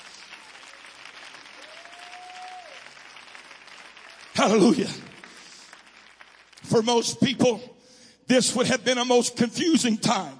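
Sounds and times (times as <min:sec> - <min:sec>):
audience at a sermon clapping hands in praise: 0:00.0 - 0:07.6
speech: 0:04.4 - 0:05.1, 0:06.8 - 0:10.3.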